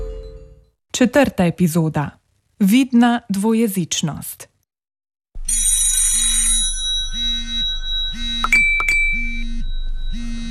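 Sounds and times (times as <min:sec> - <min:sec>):
speech: 0:01.0 - 0:04.5
phone ringing: 0:05.5 - 0:10.4.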